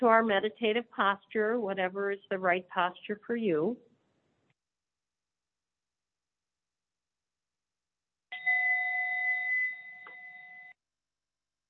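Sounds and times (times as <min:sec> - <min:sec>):
speech: 0:00.0 - 0:03.9
meditation bell ringing: 0:08.3 - 0:10.7.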